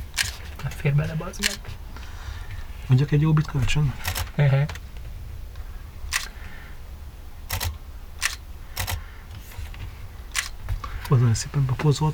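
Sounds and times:
low outdoor rumble: 0:00.0 - 0:12.1
camera shutter clicks, telephoto lens shooting: 0:00.1 - 0:00.5, 0:01.4 - 0:01.6, 0:06.1 - 0:06.4, 0:07.5 - 0:09.0, 0:10.3 - 0:10.6
speech: 0:00.8 - 0:01.8, 0:02.9 - 0:04.8, 0:11.1 - 0:12.1.

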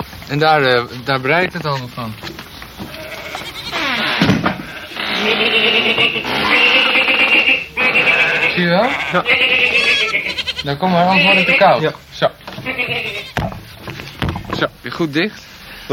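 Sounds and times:
speech: 0:00.3 - 0:02.5, 0:05.2 - 0:07.1, 0:07.8 - 0:13.6, 0:14.6 - 0:15.9
crowd of sheep bleating in a barn: 0:02.8 - 0:12.0, 0:12.6 - 0:13.5.

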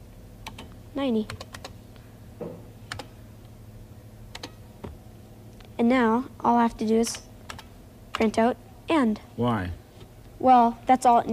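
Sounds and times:
keystrokes on a computer keyboard typing a short program: 0:00.4 - 0:01.8, 0:02.9 - 0:03.1, 0:04.3 - 0:04.6, 0:07.5 - 0:08.3
speech: 0:01.0 - 0:01.5, 0:02.4 - 0:02.6, 0:05.8 - 0:07.3, 0:08.2 - 0:09.8, 0:10.4 - 0:11.3.

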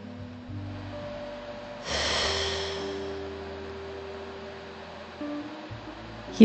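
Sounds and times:
steady droning tones: 0:00.0 - 0:06.4
person taking a deep breath: 0:01.8 - 0:03.3.

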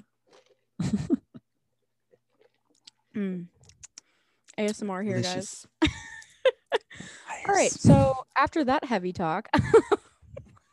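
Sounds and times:
slurping sip from a drink: 0:00.0 - 0:00.8, 0:01.8 - 0:04.6
speech: 0:00.8 - 0:01.2, 0:03.2 - 0:03.6, 0:04.6 - 0:05.7, 0:07.5 - 0:10.0
wet mouth clicks: 0:02.3 - 0:04.8
person saying a satisfied ahh: 0:05.2 - 0:05.5.

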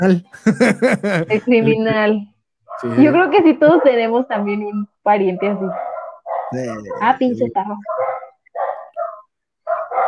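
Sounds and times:
laughter: 0:00.0 - 0:02.0, 0:02.8 - 0:03.2, 0:06.6 - 0:07.5
speech: 0:00.0 - 0:05.9, 0:06.5 - 0:08.0
household guard dog barking: 0:02.7 - 0:04.1, 0:05.3 - 0:10.0.

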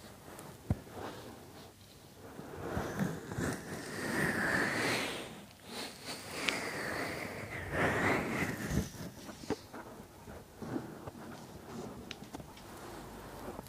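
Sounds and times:
hands rubbing and brushing during a massage: 0:00.0 - 0:13.6.

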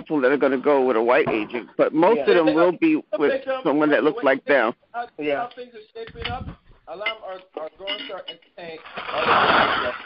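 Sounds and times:
speech: 0:00.0 - 0:10.0
dishes clattering and clinking: 0:06.1 - 0:08.6
running water: 0:07.8 - 0:10.0.

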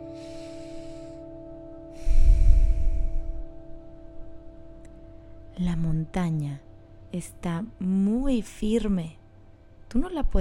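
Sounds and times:
person taking a deep breath in and out: 0:00.0 - 0:03.9
faint steady hum: 0:00.0 - 0:10.4
speech: 0:05.6 - 0:09.2, 0:09.9 - 0:10.4.

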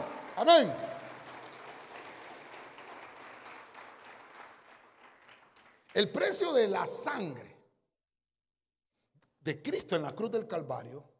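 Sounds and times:
audience clapping steadily: 0:00.0 - 0:06.6
speech: 0:00.4 - 0:00.9, 0:06.0 - 0:07.5, 0:09.5 - 0:11.1.

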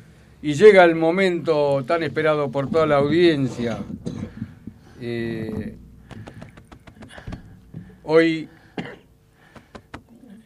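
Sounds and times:
speech: 0:00.4 - 0:04.0, 0:05.0 - 0:05.8, 0:08.1 - 0:08.9
person coughing: 0:04.0 - 0:04.4, 0:08.7 - 0:09.1.

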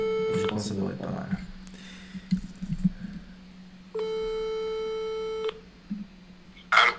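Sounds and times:
low hum: 0:00.0 - 0:06.9
speech: 0:00.6 - 0:01.5
telephone ringback tone of an outgoing call: 0:04.0 - 0:05.5.

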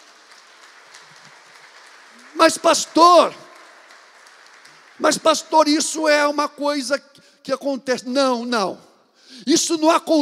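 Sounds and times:
audience applauding: 0:00.0 - 0:06.4
speech: 0:02.3 - 0:03.4, 0:05.0 - 0:10.1.

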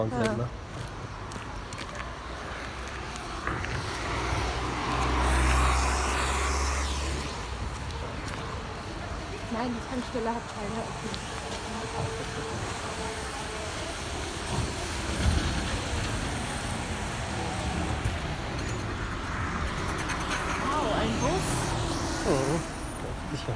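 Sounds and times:
speech: 0:00.0 - 0:00.9, 0:09.6 - 0:13.4
steady street traffic noise: 0:00.0 - 0:23.5
bus engine rumbling past on a busy street: 0:00.6 - 0:23.5.

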